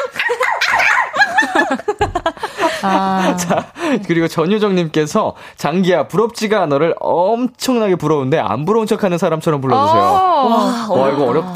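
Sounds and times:
laughter: 0:00.0 - 0:04.1
speech: 0:02.8 - 0:11.5
person singing a pop song: 0:09.7 - 0:11.5.

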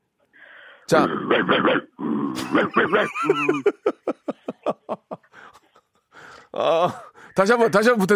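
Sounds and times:
person imitating bulldog barks and grunts: 0:00.9 - 0:03.6
speech: 0:00.9 - 0:05.0, 0:06.6 - 0:08.1
laughter: 0:02.4 - 0:06.1.

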